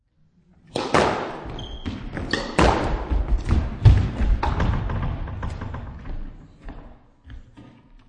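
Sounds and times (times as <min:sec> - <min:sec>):
squash ball short rally with serve and return: 0:00.7 - 0:05.7.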